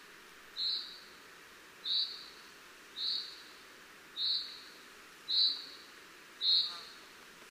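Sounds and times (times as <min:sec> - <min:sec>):
background hiss: 0:00.0 - 0:07.4
Common chaffinch Fringilla coelebs calling high whistled notes: 0:00.6 - 0:01.1, 0:01.8 - 0:02.3, 0:03.0 - 0:03.5, 0:04.2 - 0:04.7, 0:05.3 - 0:05.8, 0:06.4 - 0:07.0.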